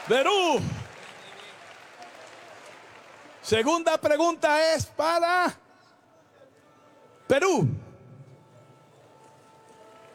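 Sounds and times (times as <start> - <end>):
crowd applauding: 0.0 - 4.1
speech: 0.1 - 0.8, 3.4 - 5.6, 7.3 - 7.8.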